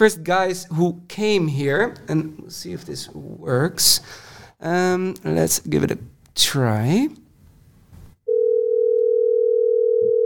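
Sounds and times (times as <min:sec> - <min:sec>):
speech: 0:00.0 - 0:07.2
outgoing phone call ringing tone: 0:08.3 - 0:10.2.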